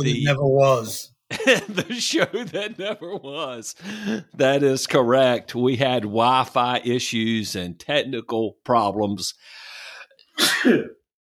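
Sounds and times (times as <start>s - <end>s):
speech: 0.0s - 9.6s, 10.4s - 11.0s
laughter: 1.3s - 4.5s
sharp breathy inhale: 9.4s - 10.1s
person sneezing: 10.4s - 11.0s.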